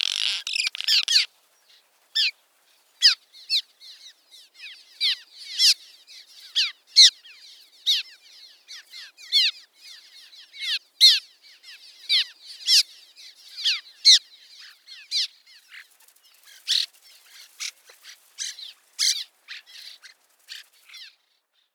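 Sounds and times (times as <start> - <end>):
Cliff swallow squeaky calls and buzzy bursts: 0.0 - 2.3, 3.0 - 21.2.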